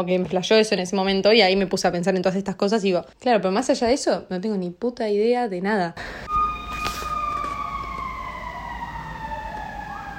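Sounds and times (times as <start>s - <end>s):
speech: 0.0s - 6.4s
emergency vehicle sirens wailing outside while passing: 6.2s - 10.1s
low rumble of traffic: 6.4s - 10.1s.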